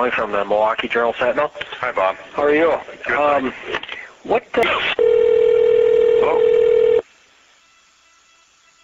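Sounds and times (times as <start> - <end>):
speech: 0.0 - 5.0, 6.2 - 6.5
telephone ringing tone over the line: 5.0 - 7.0.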